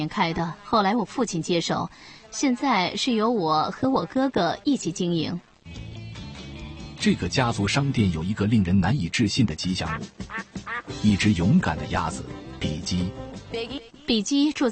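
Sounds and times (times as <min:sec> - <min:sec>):
speech: 0:00.0 - 0:05.9, 0:07.0 - 0:14.7
2-year-old Pekin duck quacking at a surf shop in Atlantic Beach, North Carolina: 0:09.9 - 0:11.0.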